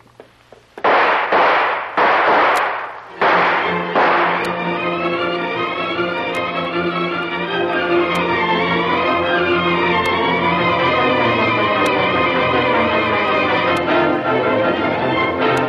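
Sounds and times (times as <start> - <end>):
gunshots fired inside a natural cave with dug tunnels: 0.8 - 4.8
steady sustained tonal drone: 1.8 - 15.6.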